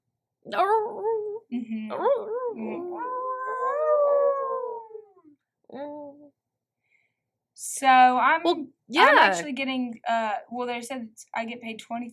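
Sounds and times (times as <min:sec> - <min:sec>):
speech: 0:00.4 - 0:03.2, 0:05.7 - 0:06.4, 0:07.6 - 0:12.1
person's voice imitating a dog's bark-moan howl: 0:00.5 - 0:06.2.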